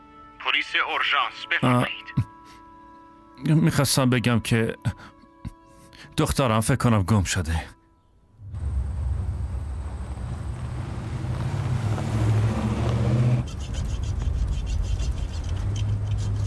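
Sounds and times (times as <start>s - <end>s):
speech: 0.6s - 2.2s, 3.4s - 5.2s, 6.1s - 7.8s
car engine drone heard from inside a moving car: 8.4s - 14.4s
road rumble from inside a moving car: 8.4s - 16.4s.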